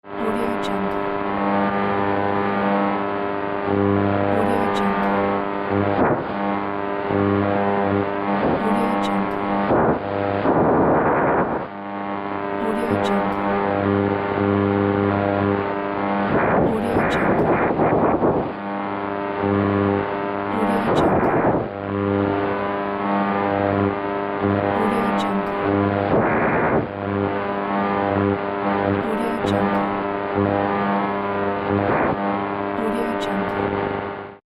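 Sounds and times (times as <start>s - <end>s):
radio wave scanning: 0.0s - 34.4s.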